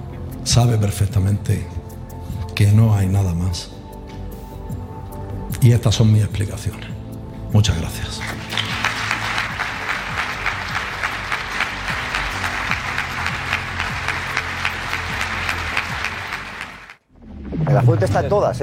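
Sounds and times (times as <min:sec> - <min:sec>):
speech: 0:00.4 - 0:01.8, 0:02.6 - 0:03.8, 0:05.6 - 0:06.9, 0:07.5 - 0:08.7, 0:17.8 - 0:18.6
large audience applauding after a speech: 0:08.2 - 0:17.0.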